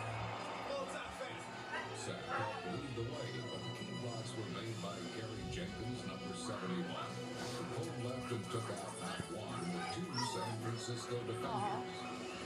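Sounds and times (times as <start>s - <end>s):
murmuring voices and crowd-like noise: 0.0s - 12.4s
several dogs barking, yipping and whimpering: 1.6s - 2.8s, 8.6s - 12.4s.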